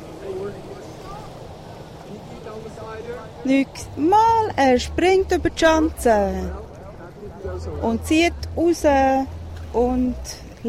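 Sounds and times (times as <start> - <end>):
fast motorboat on a lake droning while towing a wakeboarder: 0.0 - 10.6
wind outdoors over open water: 0.0 - 10.6
speech: 2.9 - 6.6, 7.5 - 10.6.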